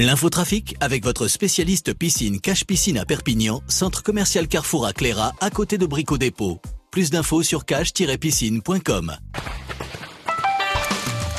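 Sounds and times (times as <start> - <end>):
speech: 0.0 - 9.9
horse hooves galloping: 9.3 - 11.3.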